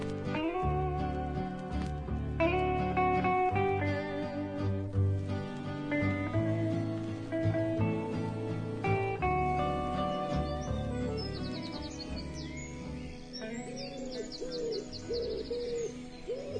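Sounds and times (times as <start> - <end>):
sustained musical backdrop: 0.0 - 16.5
birds with repeated hooting calls: 6.8 - 16.5
brief high bird chirps: 9.9 - 16.5.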